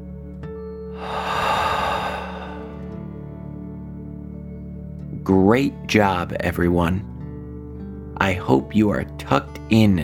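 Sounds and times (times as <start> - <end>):
deep breath in through the nose, out through the mouth: 0.9 - 3.0
speech: 5.3 - 7.1, 8.2 - 10.0.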